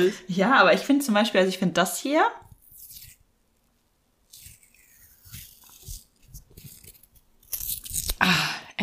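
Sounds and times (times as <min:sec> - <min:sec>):
speech: 0:00.0 - 0:02.4
adhesive tape being peeled off and torn: 0:02.6 - 0:08.3.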